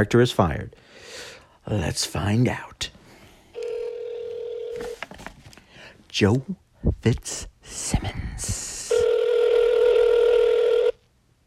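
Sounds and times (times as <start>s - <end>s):
speech: 0.0s - 3.0s, 6.1s - 8.8s
electronic telephone ring tone: 3.6s - 5.0s, 8.9s - 11.0s.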